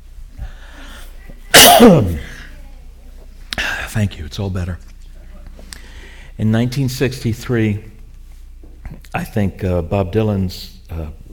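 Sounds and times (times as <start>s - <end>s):
person coughing: 1.5s - 2.4s
speech: 1.8s - 2.3s, 4.0s - 4.9s, 6.4s - 7.9s, 8.9s - 11.2s.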